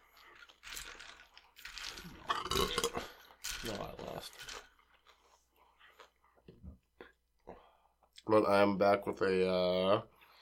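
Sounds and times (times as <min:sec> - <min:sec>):
person chewing crunchy chips: 0:00.0 - 0:03.8, 0:04.5 - 0:06.2
speech: 0:03.6 - 0:04.6, 0:08.3 - 0:10.1.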